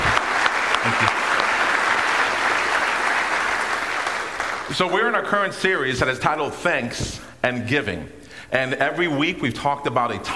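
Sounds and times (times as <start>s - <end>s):
sustained applause from a sizable audience: 0.0s - 4.8s
speech: 4.7s - 10.3s.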